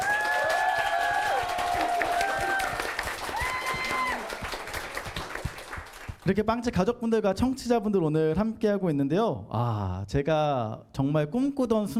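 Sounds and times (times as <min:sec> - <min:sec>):
raised voices and whoops: 0:00.0 - 0:04.4
audience applause in a large room: 0:00.0 - 0:06.2
speech: 0:06.3 - 0:11.9.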